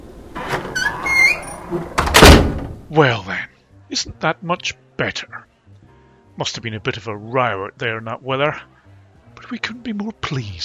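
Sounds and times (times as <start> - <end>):
door swinging shut: 0.3 - 2.9
squeaky creak of the door hinge: 0.4 - 2.2
speech: 1.7 - 1.9, 2.9 - 3.3, 3.9 - 5.5, 6.4 - 8.7, 9.4 - 10.6.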